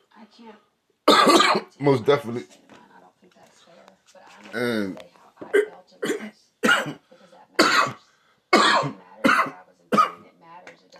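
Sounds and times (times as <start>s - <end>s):
speech: 0.3s - 2.6s, 4.5s - 5.6s
short raspy coughs: 1.1s - 1.7s, 5.5s - 7.0s, 7.6s - 8.0s, 8.6s - 10.2s.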